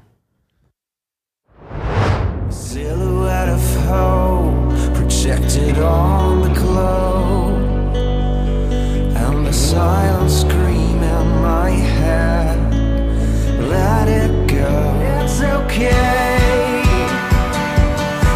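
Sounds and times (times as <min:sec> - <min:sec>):
rising whoosh: 0:01.5 - 0:03.7
pop song with sung lead vocal over bass and layered instruments: 0:02.5 - 0:08.1, 0:08.7 - 0:18.3.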